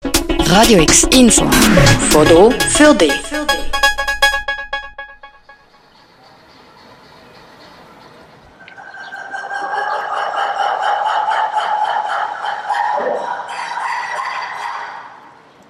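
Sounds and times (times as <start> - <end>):
speech: 0.5 - 3.8
ruffed lemurs barking: 6.0 - 15.3
ruffed lemurs squealing: 8.7 - 15.1
ruffed lemurs grunting: 11.6 - 14.1.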